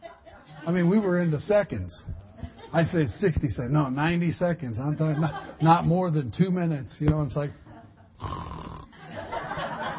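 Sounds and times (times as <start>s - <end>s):
speech: 0.7s - 7.6s
laughter: 2.3s - 3.3s, 4.8s - 6.1s, 8.9s - 9.9s
person snoring: 8.2s - 8.9s.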